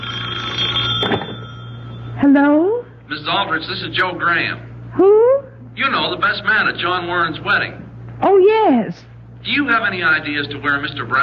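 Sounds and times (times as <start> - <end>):
telephone ringing at night with an electric bell tone: 0.0 - 2.3
low hum: 0.0 - 11.2
speech: 2.3 - 11.2.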